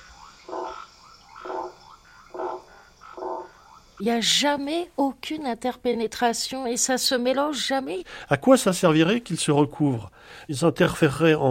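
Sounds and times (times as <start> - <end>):
frogs croaking: 0.0 - 4.9
soft steady hiss: 0.0 - 11.4
speech: 4.0 - 11.4.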